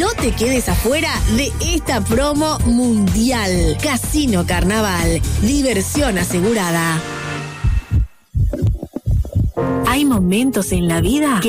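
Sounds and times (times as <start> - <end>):
speech: 0.0 - 7.2, 9.6 - 11.4
heartbeat: 7.6 - 11.3.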